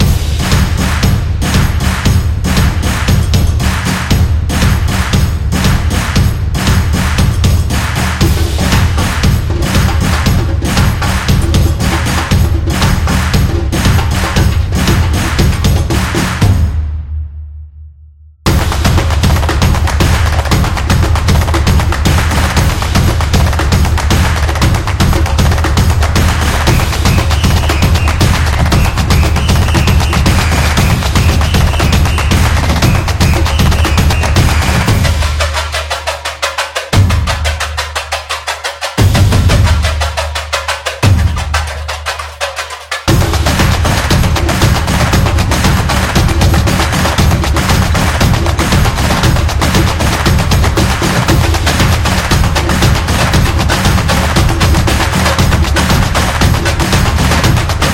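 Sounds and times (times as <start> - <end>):
samba drums: 0.0 - 17.1, 18.5 - 57.9.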